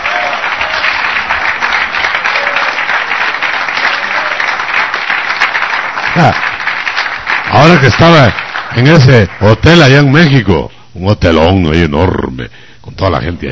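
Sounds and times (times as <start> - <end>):
audience clapping during a church sermon: 0.0 - 10.4
speech: 6.2 - 6.5, 7.5 - 13.4.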